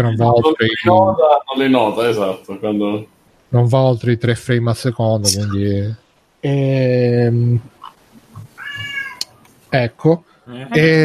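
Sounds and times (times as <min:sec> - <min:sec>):
speech: 0:00.0 - 0:07.8, 0:09.7 - 0:11.0
cat meowing: 0:08.4 - 0:09.3.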